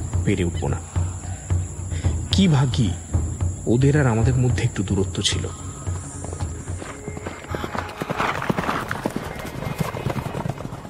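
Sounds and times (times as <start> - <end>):
speech: 0.2 - 1.0, 2.4 - 3.0, 3.6 - 5.6
horses galloping up a rocky path: 5.4 - 10.8.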